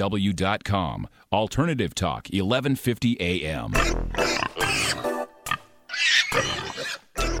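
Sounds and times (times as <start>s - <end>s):
speech: 0.0s - 5.1s
pigs oinking and grunting: 3.7s - 7.3s.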